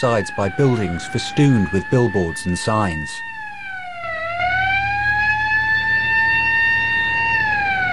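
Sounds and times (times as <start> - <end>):
speech: 0.0 - 3.3
ambulance siren wailing on a city street: 0.0 - 7.9.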